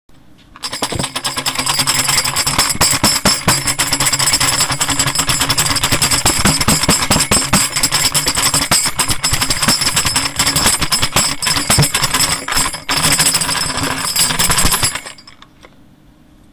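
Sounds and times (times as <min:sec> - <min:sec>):
Halloween noisemaker metal tambourine with undecorated paper head: 0:00.6 - 0:15.4.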